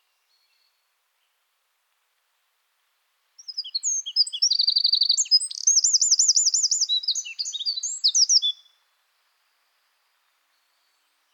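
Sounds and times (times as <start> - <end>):
Eurasian wren Troglodytes troglodytes singing shrill twittering notes and trills: 3.4 - 8.7.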